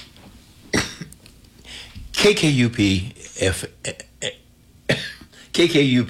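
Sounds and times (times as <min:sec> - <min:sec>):
person coughing and clearing the throat: 0:00.7 - 0:01.2, 0:03.8 - 0:05.5
speech: 0:02.2 - 0:04.4, 0:05.6 - 0:06.0.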